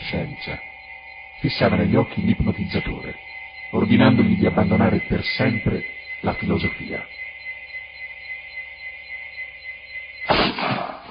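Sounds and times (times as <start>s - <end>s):
steady droning tone: 0.0s - 10.3s
speech: 0.1s - 0.7s, 1.4s - 7.3s
distant hunter's rifle shot with rumbling echo: 10.3s - 11.0s.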